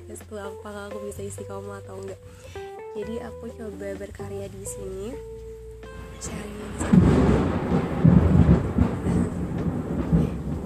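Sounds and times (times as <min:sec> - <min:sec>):
speech: 0:00.1 - 0:05.4, 0:06.2 - 0:07.8
rolling thunder during a storm: 0:06.4 - 0:10.6.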